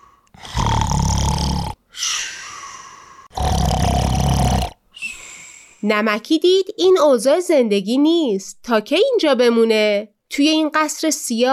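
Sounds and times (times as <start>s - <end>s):
loud rumbling snoring of a giant: 0.3s - 1.8s, 3.3s - 4.8s
speech: 5.8s - 11.5s.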